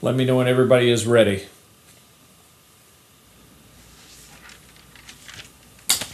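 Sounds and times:
speech: 0.0s - 1.6s
paper crinkling and rustling: 3.9s - 6.1s.

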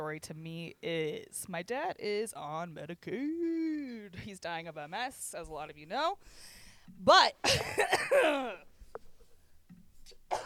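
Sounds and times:
speech: 0.1s - 8.7s
person clearing throat: 7.4s - 8.7s.

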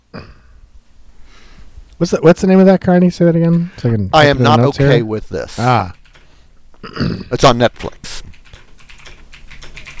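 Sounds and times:
speech: 2.0s - 6.0s, 6.8s - 8.2s
typing on a computer keyboard: 5.9s - 6.3s, 8.3s - 9.9s.

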